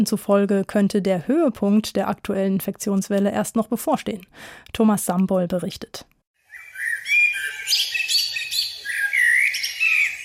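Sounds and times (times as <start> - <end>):
speech: 0.0 - 6.1, 7.6 - 8.1
blackbird singing: 6.5 - 10.2.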